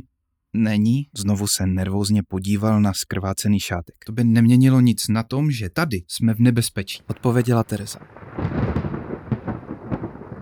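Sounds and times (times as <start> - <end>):
speech: 0.0 - 8.6
sharper crackling bursts: 6.9 - 10.4
low rolling thunder rumble from an approaching storm: 7.0 - 10.4
steady rain-like hiss: 7.0 - 10.4.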